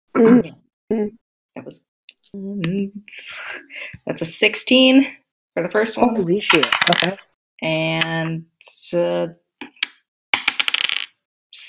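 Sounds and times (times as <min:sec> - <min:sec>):
speech: 0:00.2 - 0:09.4
dice rolled during a tabletop game clattering: 0:06.5 - 0:07.3, 0:09.8 - 0:11.2.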